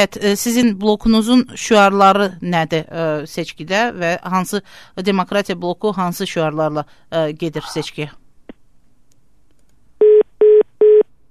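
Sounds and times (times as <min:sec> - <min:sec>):
speech: 0:00.0 - 0:08.2
telephone line disconnection tone beeps: 0:10.0 - 0:11.0.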